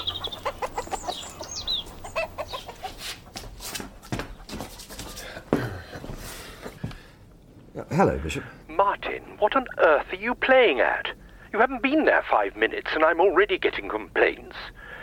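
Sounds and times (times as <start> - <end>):
flock of chickens clucking and squawking: 0.0 - 5.2
speech: 8.0 - 14.6.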